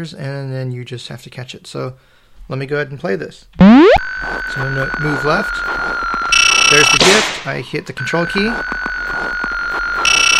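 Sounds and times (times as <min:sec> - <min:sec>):
speech: 0:00.0 - 0:09.2
electronic game tone: 0:03.6 - 0:04.1, 0:06.3 - 0:07.1, 0:10.1 - 0:10.3
fast pulsing game beep: 0:03.6 - 0:07.1, 0:08.0 - 0:09.4, 0:10.0 - 0:10.3.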